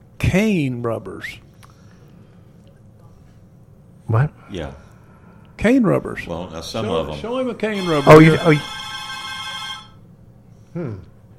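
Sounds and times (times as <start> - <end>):
speech: 0.3 - 1.5, 4.1 - 4.9, 5.6 - 8.8, 10.8 - 11.1
telephone ringing with an incoming call to a call-in line: 7.7 - 10.0.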